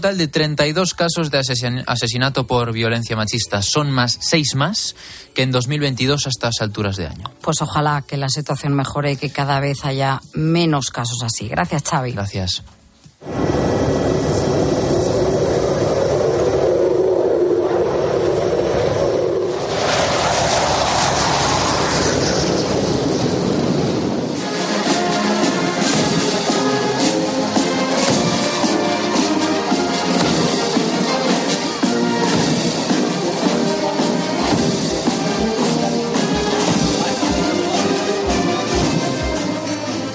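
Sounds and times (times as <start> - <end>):
speech: 0.0 - 13.8
jet airplane landing at a military airport in Lisbon: 13.2 - 40.0.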